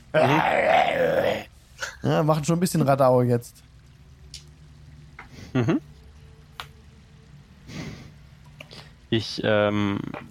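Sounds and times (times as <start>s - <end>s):
speech: 0.1s - 0.7s, 2.0s - 3.7s, 5.5s - 5.9s, 9.1s - 10.2s
person imitating wolves growling: 0.1s - 1.5s.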